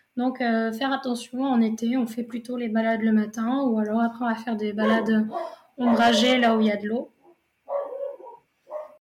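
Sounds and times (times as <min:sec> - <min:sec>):
speech: 0:00.2 - 0:07.1
dogs barking behind a closed door: 0:04.8 - 0:06.3, 0:07.2 - 0:09.0.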